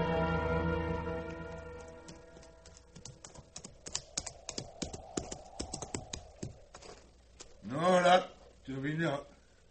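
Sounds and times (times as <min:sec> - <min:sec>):
low hum: 0:00.1 - 0:09.6
ridden horse hooves clip-clopping: 0:01.2 - 0:07.5.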